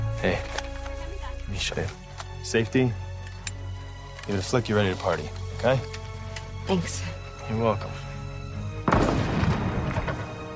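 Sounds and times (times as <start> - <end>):
speech: 0.2 - 0.6, 1.5 - 3.1, 4.3 - 6.0, 6.7 - 8.1
rifle gunshot: 8.9 - 10.3.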